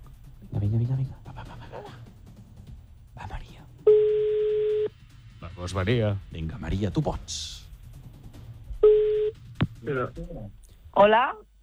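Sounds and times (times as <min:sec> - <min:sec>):
telephone ringback tone: 0:03.9 - 0:04.9, 0:08.8 - 0:09.3
speech: 0:05.6 - 0:07.6, 0:09.8 - 0:11.6.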